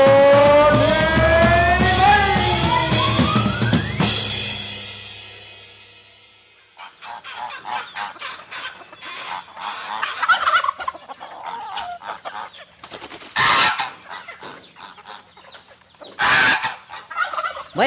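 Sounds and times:
chickens squawking: 0.0 - 4.3, 6.6 - 17.8
chickens clucking outside a henhouse in San Pedro: 6.6 - 17.8.

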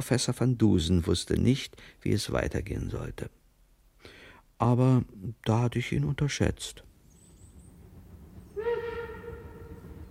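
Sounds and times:
speech: 0.0 - 3.4, 4.6 - 6.9
low rumbling of an approaching train: 6.7 - 10.0
train whistle: 8.5 - 10.0.

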